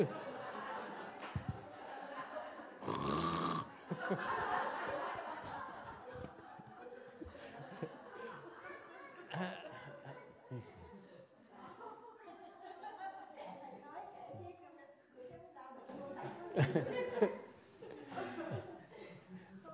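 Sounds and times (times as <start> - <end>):
crowd chuckling and laughing softly: 0.0 - 3.0, 3.6 - 13.6, 15.9 - 19.7
person imitating loud rasping snoring: 2.8 - 3.7.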